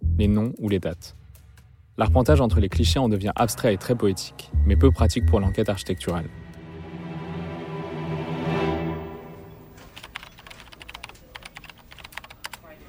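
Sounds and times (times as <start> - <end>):
speech: 0.2 - 1.2, 2.0 - 6.4
sustained humming tonal drone: 3.4 - 9.7
typing on a computer keyboard: 9.8 - 12.7.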